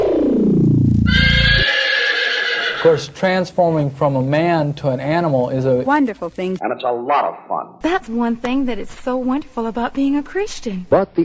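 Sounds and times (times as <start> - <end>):
horse neighing: 1.0 - 3.1
speech: 2.8 - 11.2.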